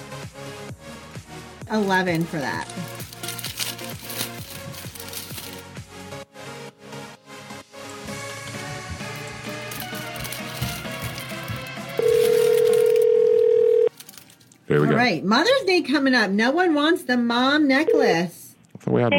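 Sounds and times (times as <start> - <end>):
speech: 1.7 - 3.0, 15.0 - 19.1
loud busy musical phone ringtone during a call: 11.9 - 13.9.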